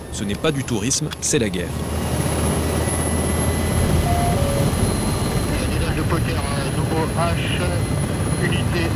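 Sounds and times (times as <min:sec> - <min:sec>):
speech: 0:00.2 - 0:02.2, 0:07.2 - 0:08.9
Tigre military attack helicopter taking off over rapeseed fields in Haute-Marne: 0:01.9 - 0:08.4.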